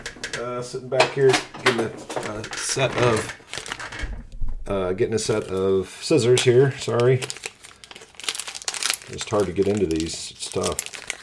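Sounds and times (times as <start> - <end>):
speech: 0.4 - 3.5, 4.7 - 7.4, 9.1 - 10.9
foil wrapper of a football card wax pack crinkling and tearing open: 2.2 - 4.0, 5.1 - 11.2.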